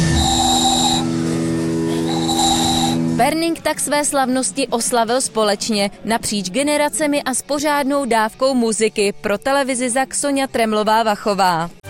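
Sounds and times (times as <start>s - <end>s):
small handmade ball whistle blown in breathy blasts: 0.0s - 1.2s, 1.9s - 3.0s
speech: 3.2s - 11.8s.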